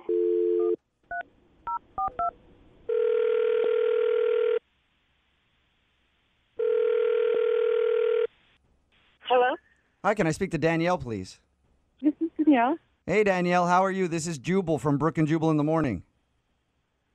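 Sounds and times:
phone dial tone: 0:00.0 - 0:02.3, 0:02.9 - 0:04.6, 0:06.6 - 0:08.3
speech: 0:10.0 - 0:11.4, 0:12.5 - 0:16.1.

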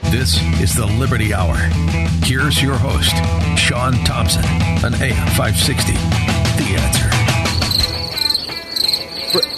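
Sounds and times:
speech: 0:00.1 - 0:07.3, 0:09.3 - 0:09.5
crickets chirping in high-pitched trills: 0:07.2 - 0:09.5.

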